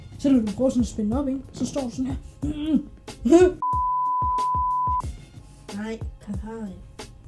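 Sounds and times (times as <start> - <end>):
speech: 0.2 - 3.7, 5.8 - 6.9
electronic censor bleep over a swear word: 3.6 - 5.0.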